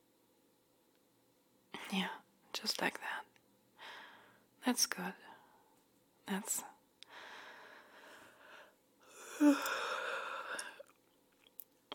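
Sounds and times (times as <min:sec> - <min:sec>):
speech: 0:01.9 - 0:03.3, 0:04.6 - 0:05.3, 0:06.3 - 0:06.7, 0:09.4 - 0:09.8
person yawning: 0:09.1 - 0:10.9.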